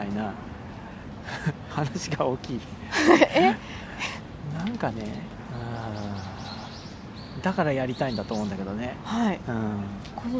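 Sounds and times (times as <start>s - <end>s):
birds chirping outdoors: 0.0s - 10.3s
faint constant hum: 0.0s - 10.3s
speech: 0.1s - 0.5s, 1.3s - 6.3s, 7.4s - 10.3s
laughter: 2.9s - 4.2s
low cooing tone: 5.5s - 6.8s.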